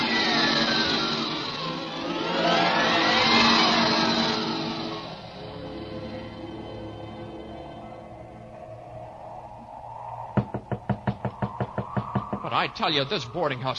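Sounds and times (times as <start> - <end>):
low droning wind-like ambience: 0.0 - 13.7
sharp knocks on a door: 10.4 - 12.5
speech: 12.5 - 13.7.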